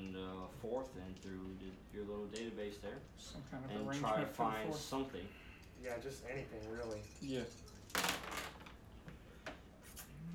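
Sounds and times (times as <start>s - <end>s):
speech: 0.1s - 7.8s
dice rattling and tumbling across a tabletop: 6.4s - 8.8s.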